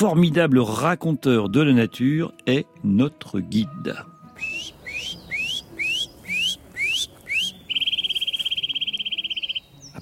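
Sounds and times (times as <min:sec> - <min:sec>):
speech: 0:00.0 - 0:04.1
Eurasian nuthatch whistling territorial call in spring breeding season: 0:04.4 - 0:10.0.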